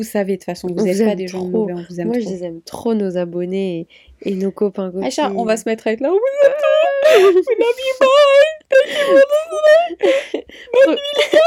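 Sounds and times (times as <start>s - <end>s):
speech: 0.0s - 11.4s
person fake crying with whimpers and sobbing gasps: 6.2s - 11.4s.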